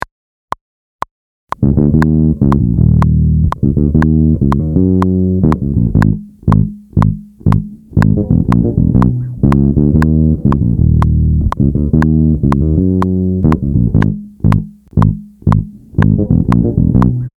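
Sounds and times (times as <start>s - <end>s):
beat: 1.5s - 17.3s
metronome click: 1.5s - 17.3s.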